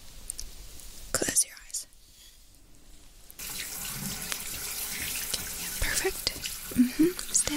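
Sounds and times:
water gushing from a tap: 0:03.4 - 0:07.5.

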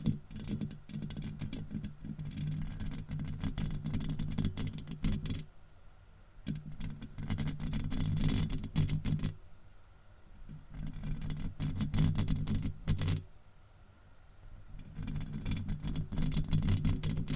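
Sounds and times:
rough scratching and rubbing on a microphone: 0:00.0 - 0:05.5, 0:06.5 - 0:09.4, 0:10.5 - 0:13.2, 0:14.7 - 0:17.3.

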